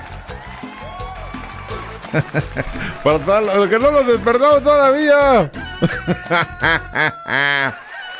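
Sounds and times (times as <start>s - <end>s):
speech: 2.1s - 7.8s
laughter: 2.1s - 8.0s
rooster crowing: 5.5s - 8.1s.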